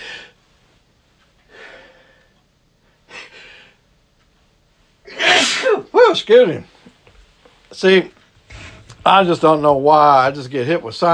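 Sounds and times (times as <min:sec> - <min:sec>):
loud forceful sneeze from a person with irritated sinuses: 0:05.1 - 0:05.9
speech: 0:06.1 - 0:06.7, 0:07.7 - 0:08.2, 0:09.0 - 0:11.1.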